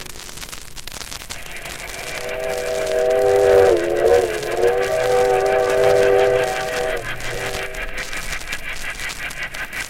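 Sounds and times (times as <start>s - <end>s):
train whistle: 2.0s - 8.1s
train rumbling along the tracks: 2.2s - 9.7s.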